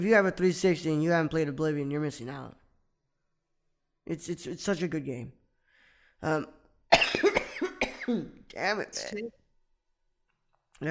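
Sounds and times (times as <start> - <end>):
speech: 0.0 - 2.6, 4.1 - 5.4, 6.2 - 6.6, 8.1 - 9.4
man coughing: 6.9 - 8.4.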